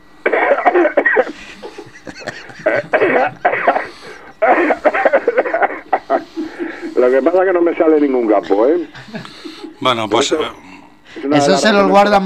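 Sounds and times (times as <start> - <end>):
person coughing deliberately on request: 0.3 - 1.4, 2.2 - 6.2
laughter: 0.3 - 7.3, 8.2 - 9.8
speech: 7.2 - 10.6, 11.3 - 12.2.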